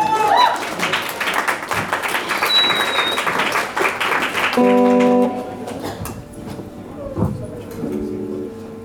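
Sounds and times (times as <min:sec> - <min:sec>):
audience applauding for a performer: 0:00.0 - 0:06.0
sustained instrumental tones: 0:04.6 - 0:08.8.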